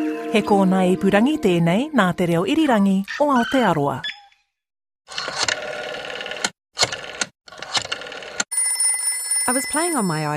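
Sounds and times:
speech: 0.3 - 4.1, 9.5 - 10.3
old rotary dial telephone mechanical bell ringing: 8.5 - 10.3.

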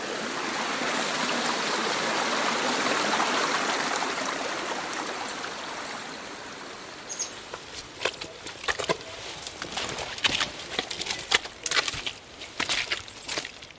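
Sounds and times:
running water in trail streams: 0.0 - 13.7
wet squelching footsteps splashing: 7.4 - 13.7.

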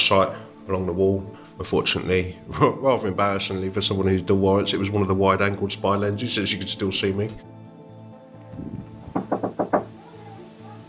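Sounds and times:
speech: 0.1 - 7.5
heavy blows as several people smash down an apartment door: 8.9 - 9.9.

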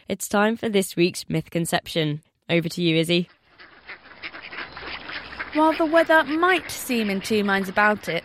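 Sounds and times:
speech: 0.1 - 3.4, 5.6 - 8.2
baby ducks quacking at a duck pond in spring: 3.1 - 8.2.

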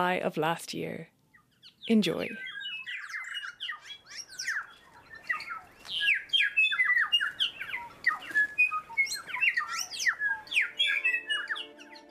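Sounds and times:
speech: 0.0 - 2.5
bright busy birdsong with chirps trills and squawky notes: 1.0 - 12.0.

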